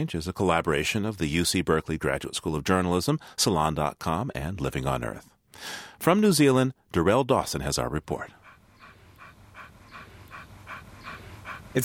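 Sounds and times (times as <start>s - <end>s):
speech: 0.0s - 8.4s
dog panting: 7.8s - 11.8s.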